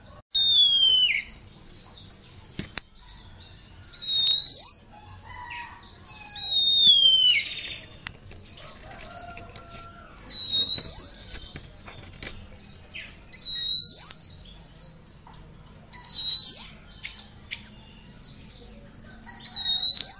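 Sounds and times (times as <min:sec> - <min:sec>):
soft chatter: 0:00.0 - 0:20.1
Oriental magpie-robin whistling: 0:00.4 - 0:01.5, 0:02.6 - 0:08.0, 0:08.6 - 0:11.4, 0:13.0 - 0:14.4, 0:15.9 - 0:18.3, 0:19.4 - 0:20.1.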